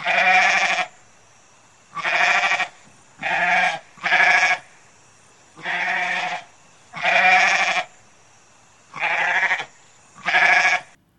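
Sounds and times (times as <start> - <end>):
wild goats bleating in a cave: 0.0 - 0.9, 2.0 - 4.6, 5.6 - 7.9, 9.0 - 10.9.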